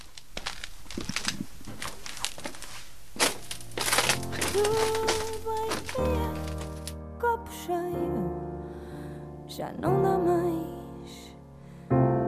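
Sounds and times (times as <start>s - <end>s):
tiptoe footsteps on studio floor: 0.0s - 6.9s
music: 3.5s - 12.2s
speech: 4.6s - 5.1s, 9.6s - 10.4s.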